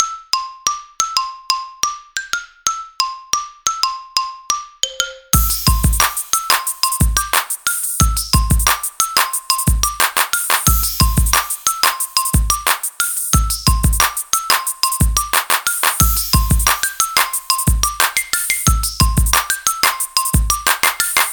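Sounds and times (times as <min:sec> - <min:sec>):
happy xylophone ringtone: 0:00.0 - 0:21.3.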